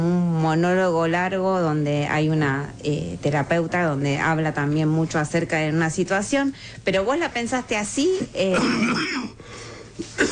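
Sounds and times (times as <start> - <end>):
speech: 0.4 - 10.2
person clearing throat: 8.5 - 9.4, 10.0 - 10.2
person coughing: 8.5 - 9.4, 10.0 - 10.2.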